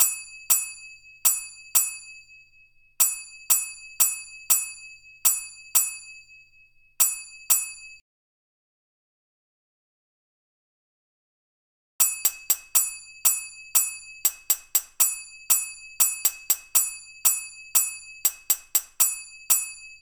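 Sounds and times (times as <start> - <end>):
finger cymbal in Latin style at 120 BPM: 0.0 - 2.4, 3.0 - 6.3, 7.0 - 8.0, 12.0 - 19.9.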